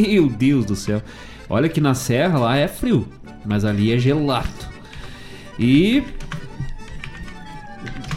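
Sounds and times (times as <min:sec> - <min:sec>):
speech: 0:00.0 - 0:04.7, 0:05.6 - 0:06.3
typing on a computer keyboard: 0:04.4 - 0:05.2, 0:05.9 - 0:08.1.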